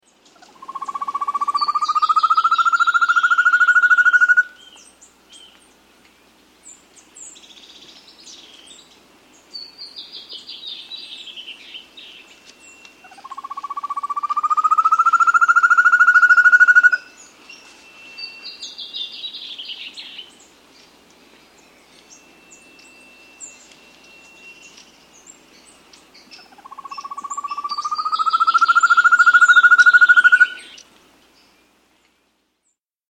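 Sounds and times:
Rufous-tailed Antthrush calling in South America: 0.4s - 4.8s, 13.0s - 17.3s, 22.1s - 30.8s.

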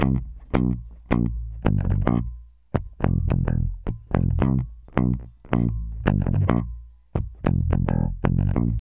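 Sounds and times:
RnB bass line: 0.0s - 8.7s.

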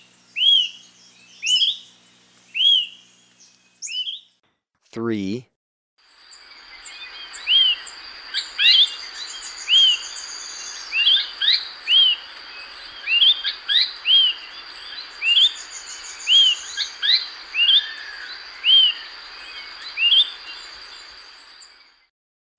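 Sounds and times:
smoke-colored pewee singing arched whistled notes in Ecuador: 0.4s - 1.9s, 2.5s - 4.4s, 6.8s - 20.8s
speech: 5.0s - 5.5s.

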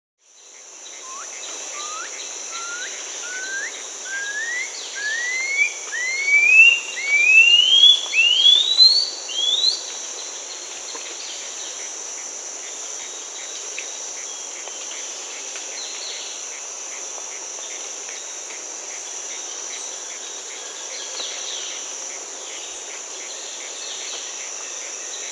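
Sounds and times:
Blue-throated Piping-Guan Aburria pipile calling in Peru: 1.0s - 8.8s.

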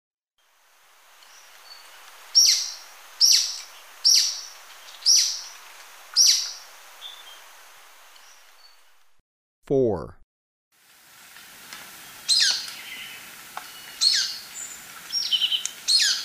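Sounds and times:
Golden-crowned Flycatcher shrill high calls in Ecuador: 1.3s - 7.4s, 12.3s - 16.2s
speech: 9.7s - 10.2s.

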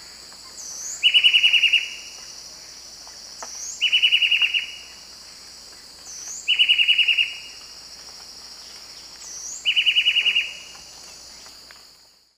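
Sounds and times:
steady high insect drone: 0.0s - 12.3s
White-breasted wood wren Henicorhina leucosticta song in South American eastern lowlands: 0.4s - 2.4s, 3.4s - 5.0s, 6.0s - 7.8s, 8.6s - 12.2s.

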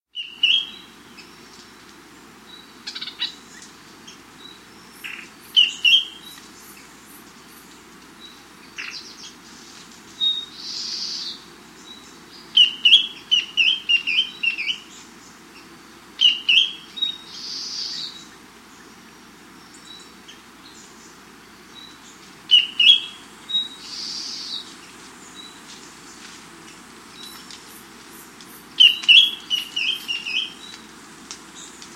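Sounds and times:
Ferruginous Antbird of South America: 2.4s - 30.8s.

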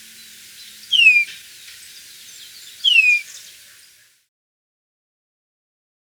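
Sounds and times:
golden-rumped euphonia whistles sliding downward in Ecuador: 0.0s - 3.9s.

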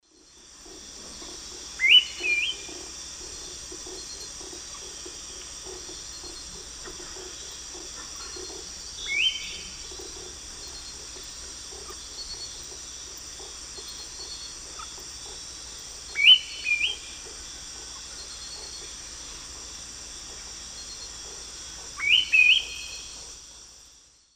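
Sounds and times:
Turdus ignobilis calling in the Eastern Lowlands of South America: 0.7s - 18.8s, 21.9s - 23.1s.

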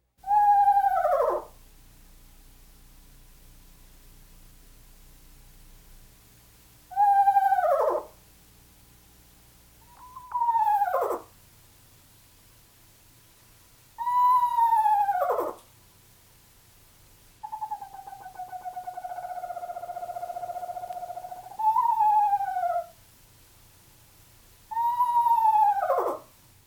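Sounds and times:
eastern screech owl eerie descending whinnies: 0.2s - 1.6s, 6.9s - 8.2s, 9.8s - 11.3s, 14.0s - 15.6s, 17.4s - 23.0s, 24.7s - 26.3s.

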